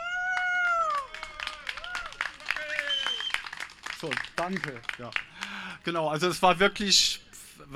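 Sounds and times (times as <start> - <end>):
people whooping and cheering: 0.0 - 3.5
audience applauding: 0.0 - 6.0
speech: 4.0 - 7.7.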